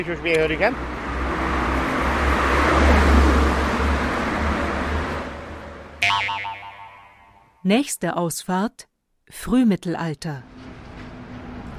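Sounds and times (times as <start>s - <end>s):
speech: 0.0s - 1.0s, 7.6s - 10.5s
heavy traffic roar on a six-lane motorway: 0.0s - 7.8s, 10.2s - 11.7s
tonal sound: 6.0s - 7.6s.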